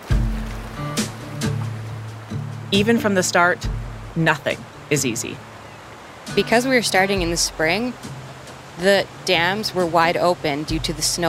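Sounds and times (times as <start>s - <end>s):
canoe sliding into river water with a deep hollow thud: 0.0s - 4.2s
river water sloshing splashes: 0.0s - 11.2s
speech: 2.7s - 5.5s, 6.3s - 8.2s, 8.8s - 11.2s.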